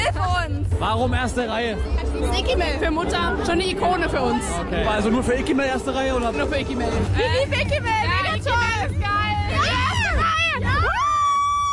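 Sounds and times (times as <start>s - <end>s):
low rumble: 0.0s - 10.8s
speech: 0.8s - 9.2s
concert crowd of high-pitched voices screaming: 9.6s - 11.7s.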